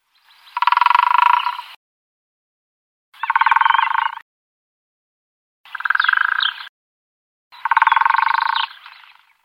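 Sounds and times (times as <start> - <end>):
Syrian woodpecker: 0.5 - 1.8, 3.2 - 4.2, 5.7 - 6.7, 7.5 - 9.4.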